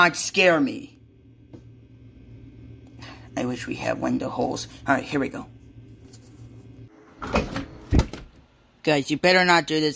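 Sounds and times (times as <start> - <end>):
speech: 0.0 - 1.0, 3.4 - 5.6, 7.2 - 7.4, 8.8 - 9.9
heavy door thumping as it swings: 7.2 - 8.3.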